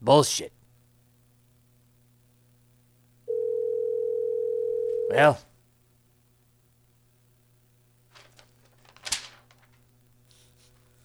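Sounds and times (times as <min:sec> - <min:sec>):
speech: 0:00.0 - 0:00.6, 0:05.1 - 0:05.5
faint low hum: 0:00.0 - 0:11.0
phone line electronic ringing tone: 0:03.3 - 0:05.4.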